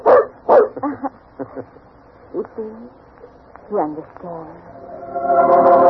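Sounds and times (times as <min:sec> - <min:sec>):
dog giving short yappy barks: 0:00.0 - 0:00.8
speech: 0:03.7 - 0:05.8.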